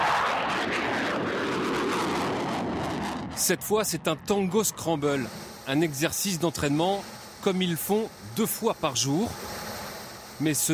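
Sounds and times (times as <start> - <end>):
fighter jet engines roaring during steep climb: 0.0 - 10.7
speech: 3.4 - 9.6, 10.4 - 10.7.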